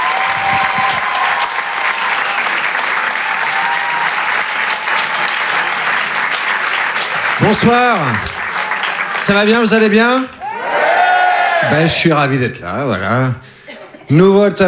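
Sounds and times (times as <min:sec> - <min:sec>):
faint cheers from the audience: 0:00.0 - 0:06.2, 0:07.0 - 0:12.1
large audience clapping loudly for a stand-up comedian: 0:00.0 - 0:11.8
speech: 0:07.4 - 0:08.3, 0:09.2 - 0:10.4, 0:11.6 - 0:13.5, 0:14.1 - 0:14.6.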